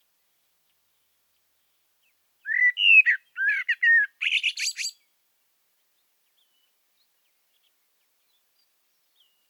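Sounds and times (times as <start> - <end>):
common blackbird Turdus merula singing: 2.4 - 5.0.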